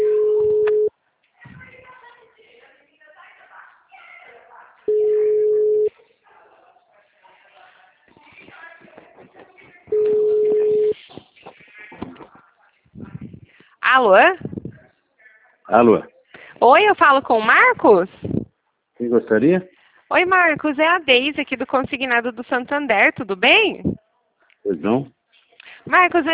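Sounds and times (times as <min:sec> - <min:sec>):
telephone ringback tone beeps while a phone call is placed: 0:00.0 - 0:00.9, 0:04.9 - 0:05.9, 0:09.9 - 0:11.0
speech: 0:15.7 - 0:18.3, 0:19.0 - 0:23.9, 0:24.7 - 0:25.2, 0:25.9 - 0:26.3.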